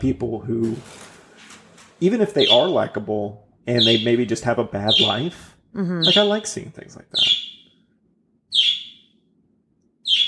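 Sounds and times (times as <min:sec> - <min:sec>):
speech: 0:00.0 - 0:01.1, 0:02.0 - 0:07.4
faint low room noise: 0:00.0 - 0:10.2
pet bird chirping loudly: 0:02.3 - 0:03.0, 0:03.7 - 0:07.8, 0:08.5 - 0:09.2, 0:10.0 - 0:10.2.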